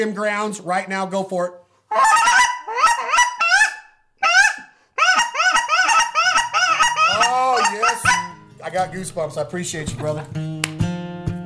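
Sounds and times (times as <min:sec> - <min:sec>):
speech: 0:00.0 - 0:02.4, 0:08.7 - 0:10.7
Canada goose call blown imitating lesser Canada geese: 0:01.9 - 0:08.4.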